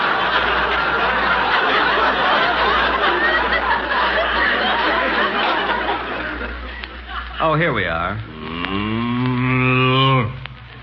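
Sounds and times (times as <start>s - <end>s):
laughter: 0.0s - 8.6s
speech: 7.5s - 9.0s
cow mooing: 8.3s - 10.4s.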